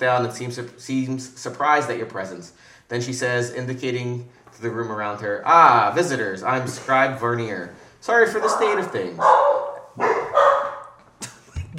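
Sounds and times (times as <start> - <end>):
speech: 0.0 - 10.1
dog barking: 8.3 - 11.0.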